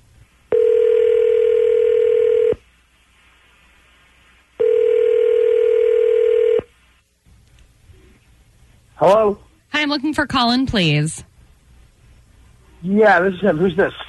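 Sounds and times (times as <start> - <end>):
telephone ringing tones on a call being placed: 0.5 - 2.6, 4.6 - 6.7
speech: 9.0 - 11.3, 12.8 - 14.0.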